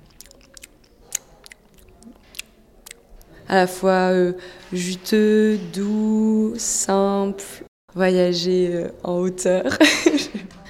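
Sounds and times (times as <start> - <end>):
wet mouth noises with smacks, clicks and pops: 0.0 - 3.4
speech: 3.5 - 10.2
laughter: 9.7 - 10.6.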